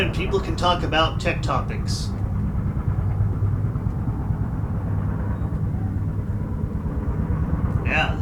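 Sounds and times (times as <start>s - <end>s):
speech: 0.0s - 2.2s, 7.9s - 8.1s
airplanes flying by: 0.0s - 8.1s.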